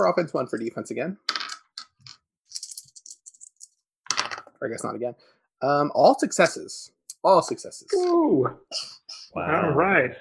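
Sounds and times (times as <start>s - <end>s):
speech: 0.0s - 1.4s, 4.6s - 10.1s
dice being rolled, rattling and clattering: 1.3s - 4.5s.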